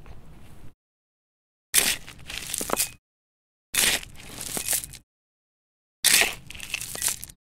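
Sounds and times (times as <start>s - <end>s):
shovel digging: 1.7s - 3.0s, 3.7s - 5.1s, 6.1s - 7.4s.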